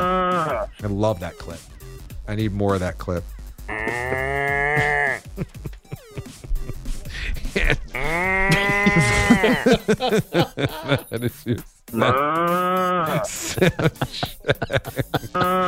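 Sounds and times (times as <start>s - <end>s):
cows mooing: 0.0s - 0.7s, 3.7s - 5.4s, 7.8s - 10.2s, 12.0s - 13.4s, 15.3s - 15.6s
speech: 0.8s - 1.7s, 2.3s - 6.0s, 7.6s - 15.6s
laughter: 4.6s - 15.6s.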